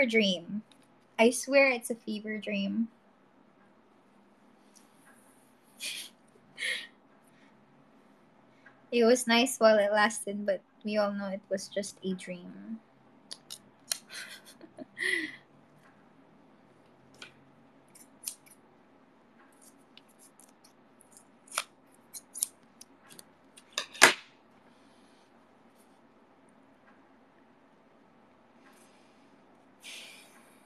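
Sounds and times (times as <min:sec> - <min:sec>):
speech: 0:00.0 - 0:03.0, 0:05.8 - 0:06.9, 0:08.9 - 0:12.9, 0:15.0 - 0:15.3
scissors cutting stickers: 0:17.9 - 0:18.6, 0:19.5 - 0:23.2.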